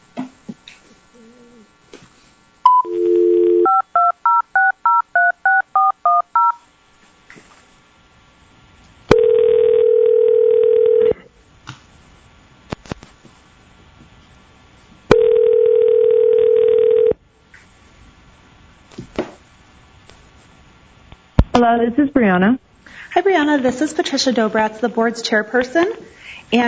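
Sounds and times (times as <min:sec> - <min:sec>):
phone dial tone: 0:02.7 - 0:06.6, 0:09.1 - 0:11.2, 0:15.1 - 0:17.2
speech: 0:21.8 - 0:22.6, 0:23.4 - 0:26.6.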